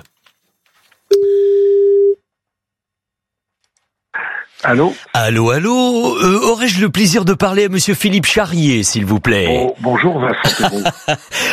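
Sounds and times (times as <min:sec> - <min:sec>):
telephone line tone for a call being placed: 0:01.1 - 0:02.2
speech: 0:04.7 - 0:11.5
laughter: 0:09.9 - 0:11.5.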